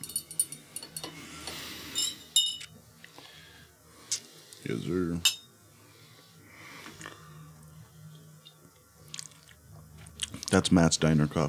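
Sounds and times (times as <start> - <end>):
spoon clinking while stirring diner coffee with milk in a cup: 0.0 - 1.2, 2.0 - 2.7, 5.2 - 5.5
speech: 4.7 - 5.4, 10.5 - 11.4.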